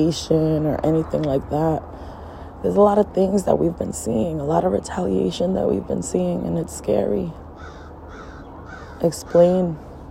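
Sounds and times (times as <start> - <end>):
speech: 0.0 - 2.0, 2.6 - 7.4, 9.0 - 9.9
faint hum: 0.0 - 10.0
crow cawing: 7.6 - 9.4.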